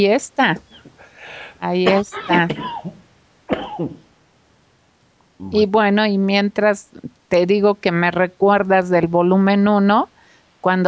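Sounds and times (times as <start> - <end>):
speech: 0.0 - 4.0, 5.4 - 10.8
person coughing: 1.8 - 4.1.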